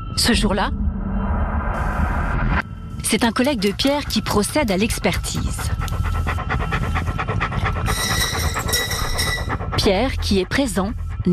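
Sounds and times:
low rumbling background: 0:00.0 - 0:11.3
speech: 0:00.2 - 0:00.8, 0:01.7 - 0:06.1, 0:09.8 - 0:11.3
dog panting: 0:03.4 - 0:11.3.

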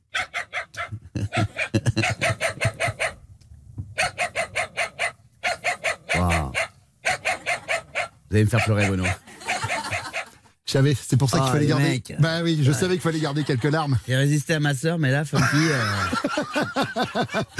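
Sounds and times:
dubbed dog character barking: 0:00.1 - 0:03.2, 0:04.0 - 0:10.4
laughter: 0:00.8 - 0:02.8, 0:09.1 - 0:10.4, 0:12.2 - 0:14.3, 0:15.3 - 0:17.5
speech: 0:08.4 - 0:09.2, 0:10.7 - 0:17.5.

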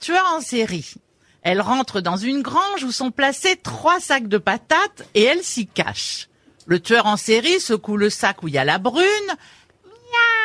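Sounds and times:
speech: 0:00.0 - 0:10.3
person imitating cat meows: 0:09.9 - 0:10.4.

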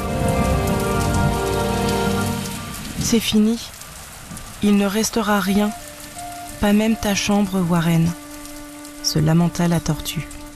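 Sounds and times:
heavy storm rain mixed with hail drumming on a nearby surface: 0:00.0 - 0:10.5
speech: 0:03.1 - 0:03.8, 0:04.6 - 0:05.8, 0:06.6 - 0:08.2, 0:09.0 - 0:10.3.

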